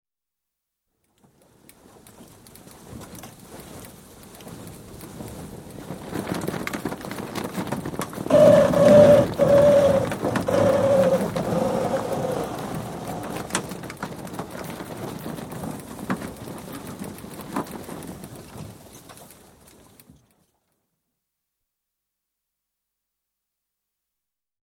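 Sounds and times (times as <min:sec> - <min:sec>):
sailing dinghy running aground recorded on board: 0:01.3 - 0:20.3.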